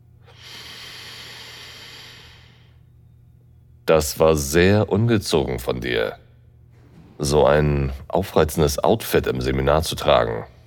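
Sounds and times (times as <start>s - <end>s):
man taking a deep slow inhale through the nose: 0.2s - 2.8s
speech: 3.9s - 6.2s, 7.2s - 10.6s.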